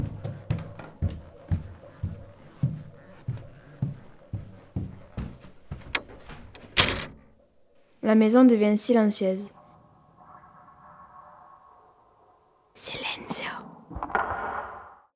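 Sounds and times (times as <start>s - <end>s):
soft wooden thuds and knocks: 0.0s - 7.3s
front door closing with a sharp bang: 5.7s - 7.4s
speech: 8.1s - 9.6s.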